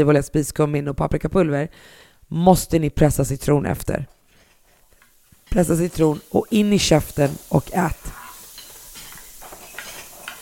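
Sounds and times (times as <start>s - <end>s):
speech: 0.0s - 4.2s, 5.5s - 8.2s
lamb fillet with fat cap frying in a pan: 4.6s - 10.3s.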